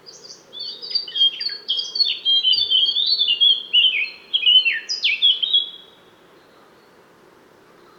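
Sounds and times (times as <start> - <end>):
Eurasian blackcap song of fluty warbled phrases: 0.1 - 6.0.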